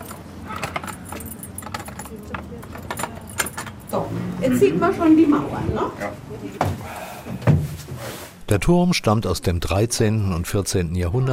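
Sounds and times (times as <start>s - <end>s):
keys to a medieval town wall tower jangling: 0.0s - 4.1s
speech: 3.9s - 7.6s, 8.5s - 11.3s.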